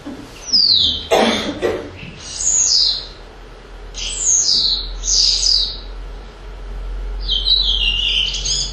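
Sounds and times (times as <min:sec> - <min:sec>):
house sparrow chirping: 0:00.4 - 0:01.1, 0:02.0 - 0:03.2, 0:03.9 - 0:05.9, 0:07.2 - 0:08.7
harsh cough-like noise: 0:01.1 - 0:02.0.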